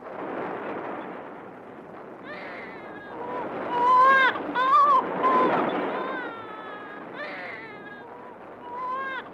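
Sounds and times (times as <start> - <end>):
dense rumbling noise: 0.0 - 9.3
nursing infant crying loudly in a basement under wartime shelling: 2.3 - 9.3.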